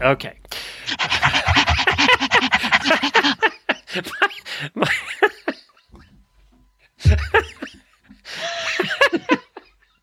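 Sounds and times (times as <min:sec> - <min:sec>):
speech: 0:00.0 - 0:01.4, 0:02.8 - 0:05.1
people panting loudly and rapidly: 0:00.7 - 0:04.7
breathy laughter: 0:00.9 - 0:05.9, 0:07.0 - 0:10.0.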